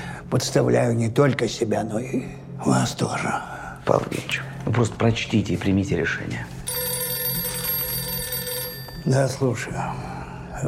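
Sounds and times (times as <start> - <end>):
speech: 0.3 - 6.6, 9.0 - 10.6
telephone ringing with electronic bell tone: 6.7 - 9.9.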